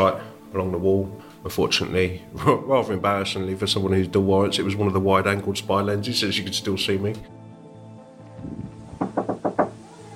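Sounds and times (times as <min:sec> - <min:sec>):
speech: 0:00.0 - 0:07.4
low thump: 0:08.4 - 0:09.7
heavy blows battering a door: 0:08.6 - 0:09.8.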